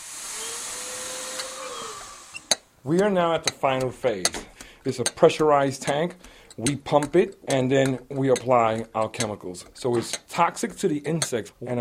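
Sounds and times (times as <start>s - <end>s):
vacuum cleaner running during a bedbug extermination: 0.0s - 2.4s
speech: 2.8s - 11.7s.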